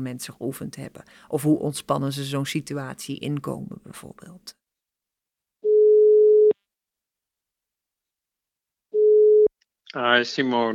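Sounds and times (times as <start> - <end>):
speech: 0.0 - 4.6, 10.0 - 10.7
telephone ringback tone before a call connects: 5.6 - 6.6, 9.0 - 9.5.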